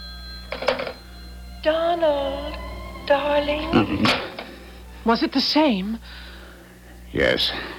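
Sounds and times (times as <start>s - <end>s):
telephone ringing on a private line: 0.0s - 5.4s
steady low hum: 0.1s - 7.1s
speech: 1.6s - 4.3s, 5.0s - 6.3s, 7.1s - 7.7s.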